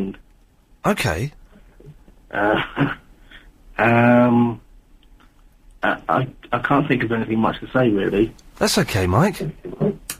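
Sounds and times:
speech: 0:00.0 - 0:00.2, 0:00.8 - 0:01.4, 0:02.3 - 0:03.0, 0:03.8 - 0:04.6, 0:05.8 - 0:10.1
clearer closer voice answering: 0:00.8 - 0:01.4
man talking over a thin band-limited phone line with speakerphone echo: 0:00.8 - 0:01.4, 0:08.6 - 0:09.5.

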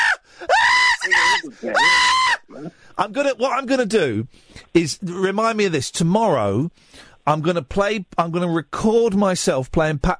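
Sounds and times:
voice imitating children screaming in excitement while playing a video game: 0:00.0 - 0:02.5
speech: 0:01.5 - 0:02.0, 0:03.0 - 0:10.1.

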